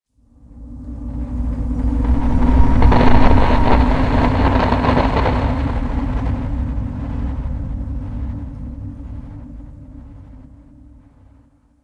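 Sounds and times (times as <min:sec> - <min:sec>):
display static ambience: 0:02.0 - 0:08.3.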